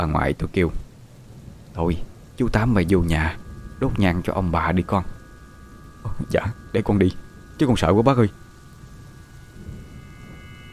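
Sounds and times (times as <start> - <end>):
speech: 0.0 - 0.8, 1.8 - 5.2, 6.0 - 8.4
faint steady tones: 0.0 - 10.7
thunder rumbling: 0.9 - 10.7.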